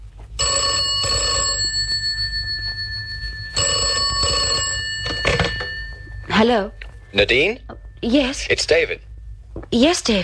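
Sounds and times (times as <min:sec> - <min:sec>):
telephone bell ringing with a bright metallic trill: 0:00.4 - 0:06.6
speech: 0:06.4 - 0:09.1, 0:09.7 - 0:10.2.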